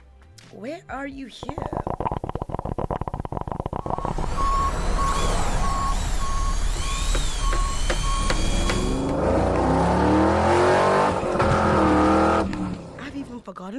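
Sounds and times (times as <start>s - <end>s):
speech: 0.5s - 1.8s
car engine roaring at a race course: 3.3s - 13.0s
steady series of high beeps: 3.6s - 9.0s
rising and falling mechanical whines: 3.8s - 9.2s.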